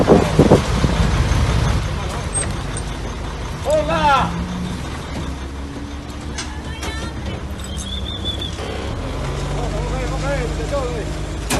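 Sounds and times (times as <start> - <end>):
garbage truck engine idling with a low rumble: 0.0 - 11.5
faint voices: 1.9 - 11.1.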